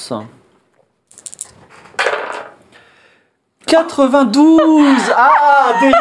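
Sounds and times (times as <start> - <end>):
speech: 0.1 - 0.4, 3.7 - 6.0
dice being shaken: 1.1 - 1.6
dice clattering across a hard surface: 1.1 - 2.6
laughter: 4.3 - 6.0.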